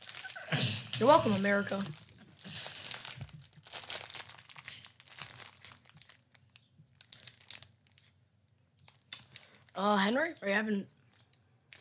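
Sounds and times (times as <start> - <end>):
plastic snack wrapper being torn open: 0.0 - 1.0, 1.9 - 8.1, 8.8 - 9.8, 11.0 - 11.7
speech: 1.0 - 2.0, 9.8 - 11.0.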